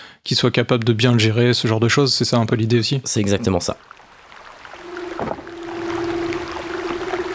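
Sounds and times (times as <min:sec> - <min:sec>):
speech: 0:00.3 - 0:04.0
hissy watery underwater background: 0:03.2 - 0:07.3
leopard seal calling underwater with low droning tone: 0:03.8 - 0:07.3.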